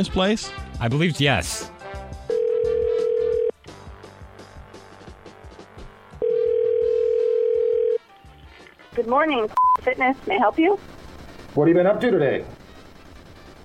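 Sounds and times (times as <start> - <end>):
speech: 0.0 - 1.8, 9.0 - 10.9, 11.6 - 12.6
telephone dial tone: 2.3 - 3.6, 6.2 - 8.0.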